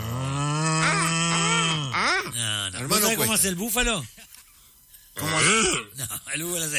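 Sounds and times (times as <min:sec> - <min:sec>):
voice imitating a pig grunting: 0:00.0 - 0:03.2, 0:05.2 - 0:06.0
speech: 0:02.8 - 0:04.2, 0:05.2 - 0:06.7.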